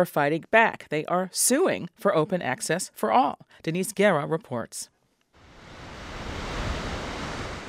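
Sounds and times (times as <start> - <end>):
speech: 0.0 - 4.9
ocean surf breaking over a deep water reef at Lunada Bay: 5.4 - 7.6.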